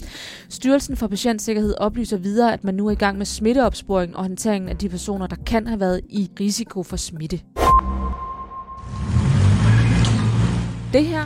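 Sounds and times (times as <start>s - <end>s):
speech: 0.6s - 7.6s, 10.9s - 11.2s
electronic beep: 7.6s - 9.0s
driverless electric bus motor hum and road rumble: 8.8s - 11.2s.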